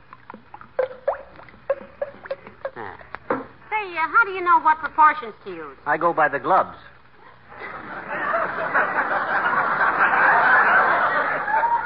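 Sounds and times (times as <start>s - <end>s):
paint glugging as it is poured: 0.0s - 3.3s
speech: 3.9s - 7.0s
laughter: 7.5s - 11.8s.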